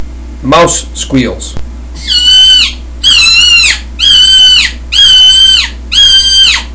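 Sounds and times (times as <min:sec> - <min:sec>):
super screamer turkey call for turkey hunting: 0:02.0 - 0:06.7.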